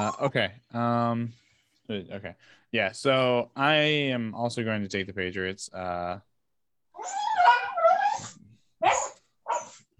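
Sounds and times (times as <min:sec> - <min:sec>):
speech: 0:00.0 - 0:06.3, 0:07.0 - 0:07.5
dog whimpering: 0:07.0 - 0:09.8
dog barking: 0:08.8 - 0:09.8.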